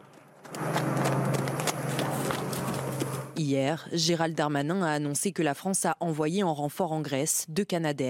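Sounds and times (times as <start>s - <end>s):
several horses' hooves clip-clopping during evacuation: 0.0s - 3.4s
steady outdoor rumble and low hum: 0.0s - 5.1s
speech: 3.4s - 8.0s.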